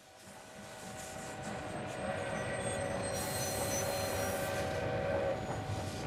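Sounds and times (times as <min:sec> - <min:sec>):
train rumbling pulling out of a railway station: 0:00.1 - 0:06.0
sustained metallic squeal and tonal whine of a train: 0:02.3 - 0:05.9.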